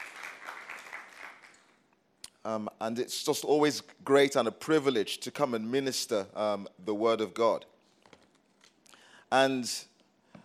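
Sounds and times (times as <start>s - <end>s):
church congregation applauding during a service: 0.0s - 1.8s
speech: 2.4s - 7.7s, 9.3s - 9.9s.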